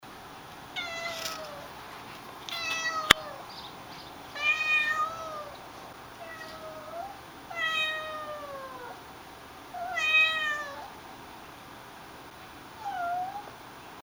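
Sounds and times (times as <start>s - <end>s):
Ceylon cat meowing: 0.8s - 1.7s, 2.4s - 3.6s, 4.3s - 5.6s, 6.2s - 9.0s, 9.7s - 11.0s, 12.8s - 13.5s.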